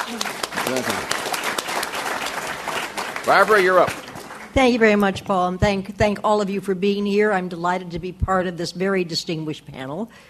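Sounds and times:
audience applause at a panel event: 0:00.0 - 0:04.6
speech: 0:00.1 - 0:01.2, 0:03.2 - 0:10.2.

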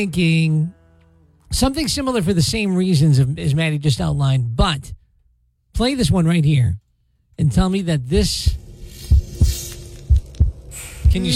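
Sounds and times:
speech: 0:00.0 - 0:00.8, 0:01.5 - 0:05.0, 0:05.8 - 0:06.8, 0:07.4 - 0:08.6, 0:11.1 - 0:11.3
faint hum: 0:00.0 - 0:11.3
deep heartbeat thumping: 0:08.2 - 0:11.3.

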